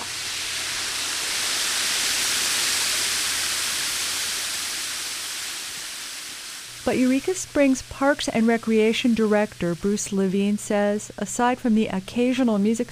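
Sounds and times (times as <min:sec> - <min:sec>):
water cascading down a stone dam: 0:00.0 - 0:09.2
speech: 0:06.8 - 0:12.9.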